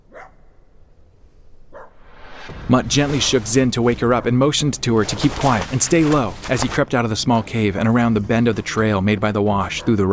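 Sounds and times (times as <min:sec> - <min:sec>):
faint dog barking: 0:00.0 - 0:00.7, 0:01.7 - 0:02.0, 0:09.7 - 0:10.1
speech: 0:02.7 - 0:10.1.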